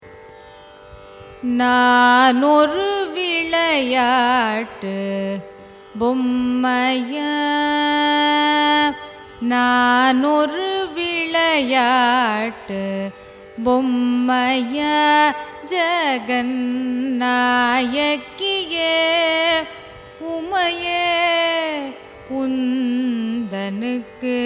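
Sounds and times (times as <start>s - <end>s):
carnatic raga music: 0.0s - 24.4s.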